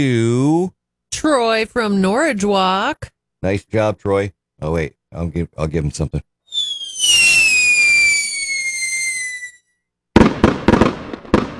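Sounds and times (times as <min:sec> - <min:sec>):
speech: 0:00.0 - 0:06.3
whistling firework rocket with falling pitch: 0:06.5 - 0:09.8
firework cracks and bangs: 0:06.6 - 0:09.5, 0:10.2 - 0:11.5.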